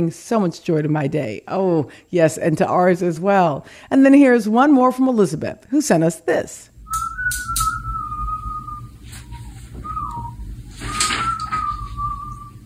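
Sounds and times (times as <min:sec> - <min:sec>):
speech: 0:00.0 - 0:07.0
14-year-old boy whistling while cleaning his desk: 0:06.9 - 0:12.6
soft rustling from tidying a desk: 0:08.9 - 0:12.2
light clatter from tidying a desk: 0:10.8 - 0:12.1.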